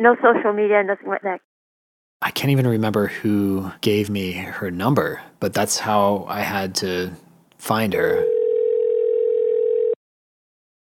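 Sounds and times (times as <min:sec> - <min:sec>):
speech: 0:00.0 - 0:01.5, 0:02.2 - 0:08.4
telephone dial tone during an outgoing call: 0:08.2 - 0:10.0.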